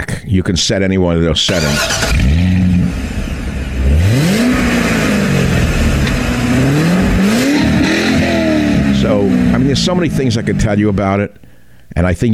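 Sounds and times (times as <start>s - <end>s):
speech: 0.3s - 2.8s, 9.1s - 12.3s
new Corvette C8 sports car engine revving: 1.5s - 11.4s.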